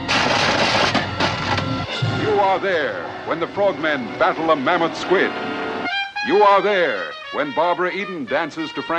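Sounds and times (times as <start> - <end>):
explosions in a movie trailer: 0.1 - 2.5
spoken narration in a movie trailer: 2.2 - 5.3, 6.3 - 8.9
speech: 2.6 - 5.5, 6.3 - 8.9.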